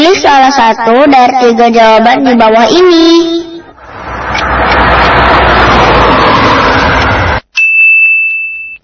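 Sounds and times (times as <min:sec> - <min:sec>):
speech: 0:00.0 - 0:03.5
car road noise: 0:01.7 - 0:07.6
car engine rumbling: 0:03.5 - 0:07.5
bright ringing chime: 0:07.6 - 0:08.8.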